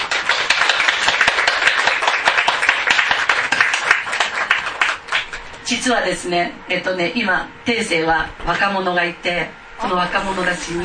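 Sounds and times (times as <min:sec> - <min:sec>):
applause from a sizable crowd: 0:00.0 - 0:05.5
speech: 0:05.7 - 0:10.8.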